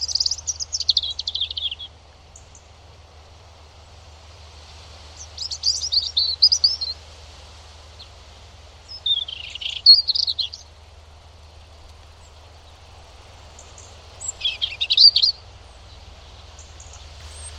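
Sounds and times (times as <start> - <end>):
European robin singing: 0.0 - 2.7, 5.1 - 7.0, 8.8 - 17.5.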